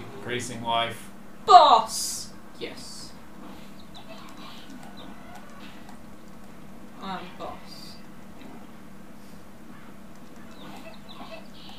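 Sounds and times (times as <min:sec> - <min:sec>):
steady low hum: 0:00.0 - 0:11.7
speech: 0:00.2 - 0:03.0, 0:07.0 - 0:07.8
chickens clucking softly in a video game: 0:03.4 - 0:07.2, 0:09.6 - 0:11.7.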